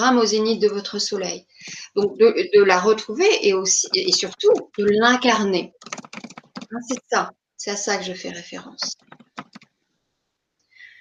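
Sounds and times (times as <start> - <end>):
speech: 0.0 - 6.0, 6.7 - 9.2
faint typing on a computer keyboard: 3.7 - 7.2, 8.8 - 9.8.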